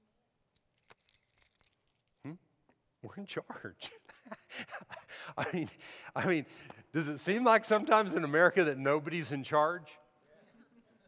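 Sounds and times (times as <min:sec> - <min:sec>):
bunch of keys jingling: 0:00.5 - 0:02.3
speech: 0:03.0 - 0:10.0.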